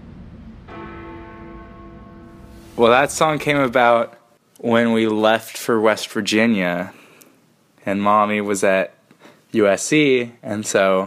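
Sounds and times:
low rumble: 0.0 - 3.9
church bell playing a tune: 0.7 - 4.0
speech: 2.8 - 7.0, 7.8 - 11.0.

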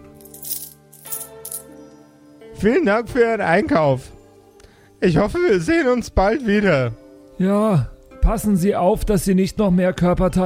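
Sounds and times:
metallic rattling and clinking of coins tossed into a drawer: 0.1 - 1.7
speech: 2.6 - 4.1, 5.0 - 10.4.

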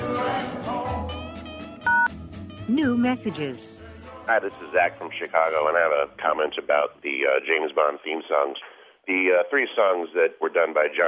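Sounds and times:
two-pitch telephone keypad dialing beep: 1.9 - 2.1
speech: 2.7 - 11.0.

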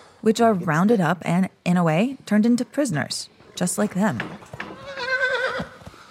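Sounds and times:
speech: 0.2 - 4.6
horse whinnying: 4.6 - 6.1.

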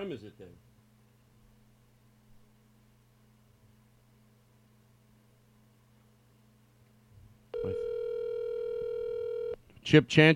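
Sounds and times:
speech: 0.0 - 0.7, 9.8 - 10.3
faint hum: 0.0 - 10.3
phone call to a mobile ringing out: 7.5 - 9.6.

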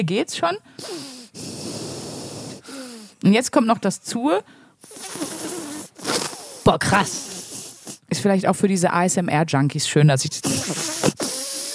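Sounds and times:
speech: 0.0 - 1.5, 3.2 - 5.2, 6.7 - 7.3, 8.2 - 11.2
sharp inhalations through each nostril: 0.7 - 3.2, 4.5 - 8.1, 10.4 - 11.7.

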